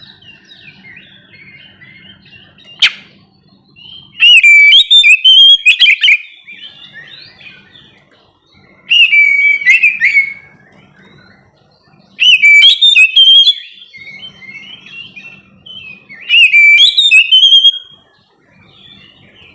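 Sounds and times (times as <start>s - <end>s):
oriental magpie-robin whistled and twittering phrases: 0.1s - 3.1s, 3.8s - 7.9s, 8.9s - 11.5s, 12.2s - 18.0s.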